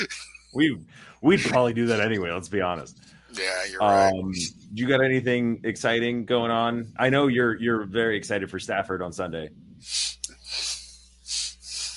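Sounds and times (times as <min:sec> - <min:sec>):
speech: 0:00.0 - 0:10.2
heavy breathing with a sharp snort-like catch: 0:09.8 - 0:11.9.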